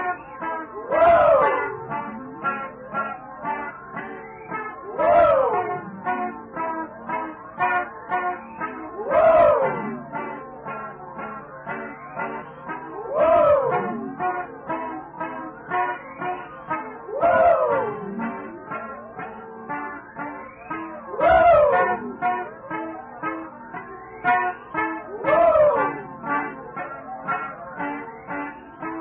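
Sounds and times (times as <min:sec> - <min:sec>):
polyphonic woo: 0:00.0 - 0:29.0.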